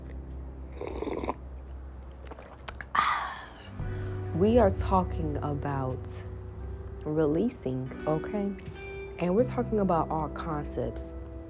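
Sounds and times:
quiet airy slurping sip of tea from a cup: 0.7s - 1.4s
speech: 4.4s - 6.3s, 7.0s - 11.2s.

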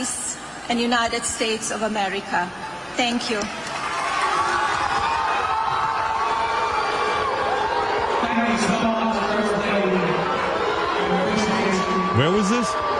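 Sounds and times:
speech: 0.0s - 3.6s, 12.2s - 12.9s
large crowd booing and shouting: 3.7s - 12.9s.

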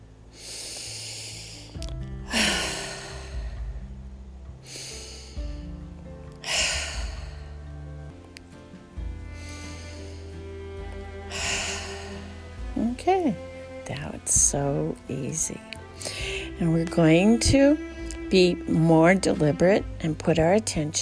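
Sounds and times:
deep cleansing breaths: 0.3s - 5.8s, 6.4s - 8.2s, 9.0s - 12.8s, 13.4s - 13.8s, 15.8s - 16.6s
speech: 14.5s - 15.7s, 16.6s - 20.9s.

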